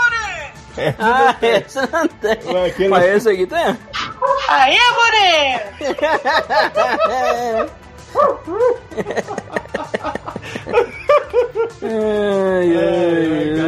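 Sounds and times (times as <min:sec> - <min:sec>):
laughter: 0:00.8 - 0:03.4, 0:05.5 - 0:07.8, 0:08.5 - 0:13.6
speech: 0:00.8 - 0:03.9, 0:04.5 - 0:13.6
pack of dogs barking and yelping: 0:03.9 - 0:04.9, 0:08.1 - 0:09.2.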